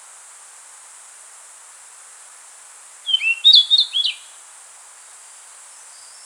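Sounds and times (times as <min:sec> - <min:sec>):
Rufous-tailed flycatcher song: 0:03.1 - 0:04.3.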